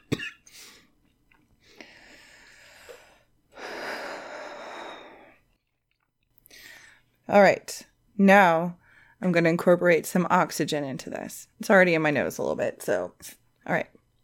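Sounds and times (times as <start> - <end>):
harsh coughing after taking a hit: 0.0 - 0.8
long raspy exhale: 1.7 - 5.4
speech: 7.3 - 14.0.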